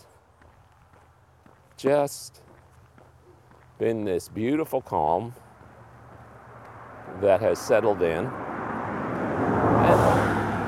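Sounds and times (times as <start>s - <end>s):
speech: 1.8s - 2.4s, 3.8s - 5.4s, 7.2s - 8.4s
car passing close by outside: 5.4s - 10.6s.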